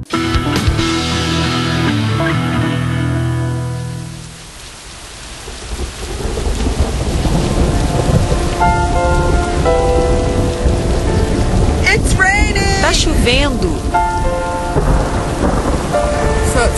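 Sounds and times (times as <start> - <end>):
heavy rain downpour in a thunderstorm: 0.1 - 16.7
deep thunder rumbling and rolling: 3.5 - 16.7.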